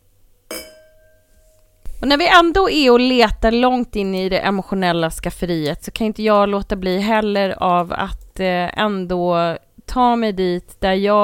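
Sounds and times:
glasses clinking in a toast: 0.5 - 1.5
speech: 2.0 - 11.2.

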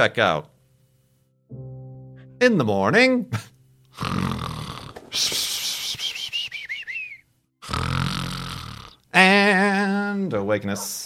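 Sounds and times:
speech: 0.0 - 0.5, 2.4 - 4.3, 5.1 - 5.5, 9.2 - 11.0
person imitating loud snoring: 3.9 - 5.0, 7.6 - 9.0.

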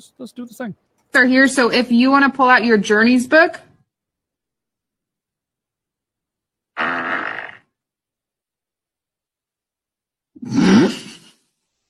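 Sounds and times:
speech: 0.0 - 3.7
fart: 6.8 - 7.8, 10.4 - 11.4.

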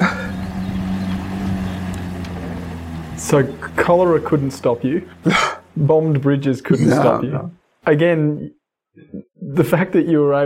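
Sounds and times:
laughter: 0.0 - 0.5
faint wash of river water: 0.0 - 7.1
boat motor droning crossing a river: 0.0 - 7.8
faint wash of wind: 0.0 - 7.8
speech: 3.3 - 10.4.

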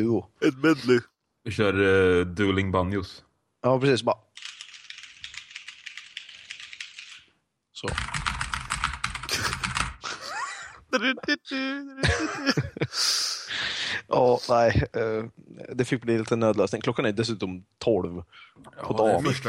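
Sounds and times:
speech: 0.0 - 4.3, 7.8 - 8.2, 10.9 - 19.4
typing on gaming keyboards at a friend's home: 4.4 - 7.3, 7.9 - 10.0
laughter: 9.3 - 13.8, 19.1 - 19.4.

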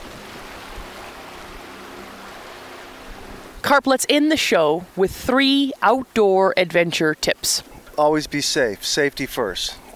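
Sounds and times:
motorboat passing by on a river with low engine drone: 0.0 - 6.2
steady wash of churning water on a river: 0.0 - 9.9
speech: 3.7 - 9.9.

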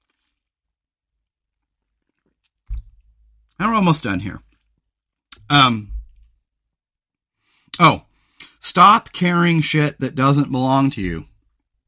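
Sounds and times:
person sipping a drink: 0.0 - 0.5, 1.6 - 2.6
speech: 3.6 - 4.5, 5.5 - 5.9, 7.8 - 11.3.

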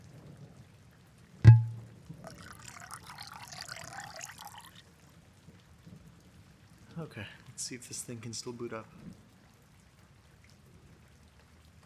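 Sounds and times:
sharp clink of glass: 1.5 - 4.5
wine glugging and splashing into a glass: 1.5 - 4.8
speech: 7.0 - 9.2.

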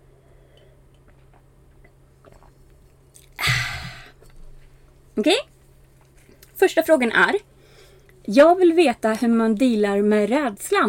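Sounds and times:
sip of wine: 1.0 - 3.4
speech: 5.2 - 5.5, 6.7 - 7.5, 8.2 - 10.8.

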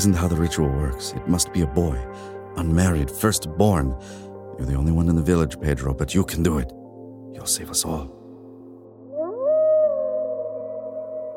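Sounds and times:
speech: 0.0 - 8.2
wolf howling: 9.0 - 11.3.

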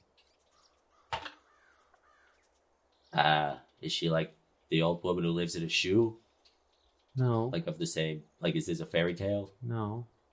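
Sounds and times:
raven cawing: 0.4 - 2.5
speech: 3.2 - 6.2, 7.2 - 10.1.

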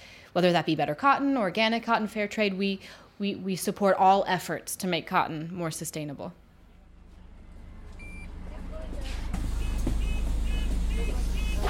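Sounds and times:
speech: 0.4 - 6.4
hybrid electric bus rumbling on the streets of London: 6.4 - 11.6
short electronic beeps: 8.0 - 8.3, 9.5 - 11.6.

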